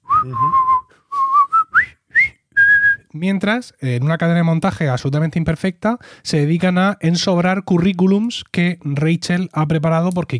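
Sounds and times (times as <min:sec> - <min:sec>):
people whistling a march-like melody: 0:00.1 - 0:03.0
speech: 0:00.2 - 0:00.7, 0:03.2 - 0:10.3.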